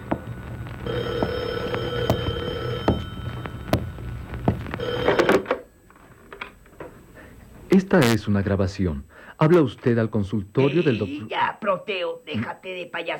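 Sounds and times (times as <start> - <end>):
telephone ringing with electronic trill: 0.8 - 5.7
speech: 0.9 - 1.3, 7.8 - 13.1.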